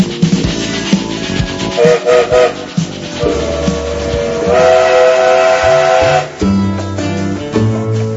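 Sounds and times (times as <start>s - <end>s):
departing train rumbling and clattering: 0.0s - 8.1s
train whistle of a departing train: 1.8s - 6.4s.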